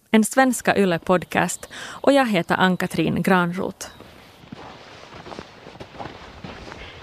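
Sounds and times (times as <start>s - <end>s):
speech: 0.1s - 4.1s
footsteps crunching on the old stone foundation of a farmhouse: 3.9s - 7.0s.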